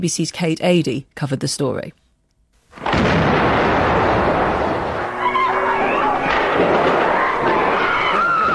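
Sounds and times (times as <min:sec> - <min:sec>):
speech: 0:00.0 - 0:02.0
explosion at the back of an embassy during a hostage siege: 0:02.7 - 0:08.1
gunshots during an embassy hostage siege: 0:02.8 - 0:08.5
faint whining tones: 0:04.4 - 0:08.5.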